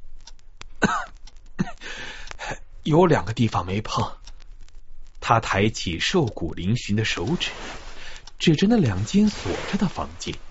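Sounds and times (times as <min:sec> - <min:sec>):
thin man in a hospital gown coughing: 0:00.8 - 0:01.8
speech: 0:02.8 - 0:04.2, 0:05.3 - 0:07.8, 0:08.4 - 0:10.4.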